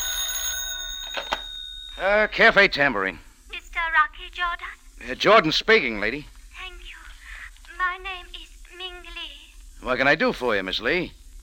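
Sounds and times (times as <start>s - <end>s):
office telephone ringing: 0.0s - 2.8s
speech: 2.0s - 3.2s, 4.4s - 6.3s, 9.8s - 11.2s.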